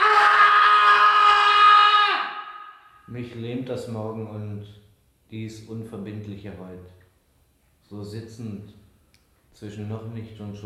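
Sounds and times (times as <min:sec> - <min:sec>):
man screaming in the night: 0:00.0 - 0:03.0
speech: 0:03.1 - 0:07.0, 0:07.9 - 0:08.8, 0:09.6 - 0:10.6.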